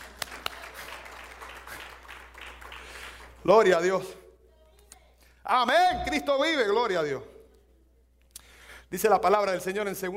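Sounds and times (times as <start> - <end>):
sharp loud claps: 0.0 - 3.4
crowd applauding: 0.0 - 3.5
speech: 3.4 - 4.2, 5.5 - 7.3, 8.9 - 10.1.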